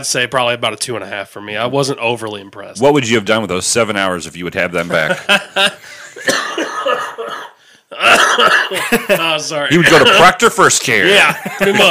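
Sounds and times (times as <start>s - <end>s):
speech: 0.0s - 6.8s, 7.9s - 11.8s
laughter: 4.8s - 7.2s, 8.0s - 10.4s, 11.0s - 11.8s
person coughing: 6.2s - 9.0s.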